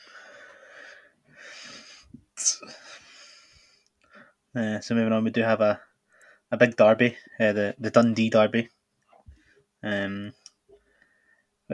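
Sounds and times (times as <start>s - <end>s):
drawn-out wheezy inhales: 0.0s - 4.4s
speech: 2.4s - 2.8s, 4.5s - 5.9s, 6.5s - 8.8s, 9.8s - 10.4s.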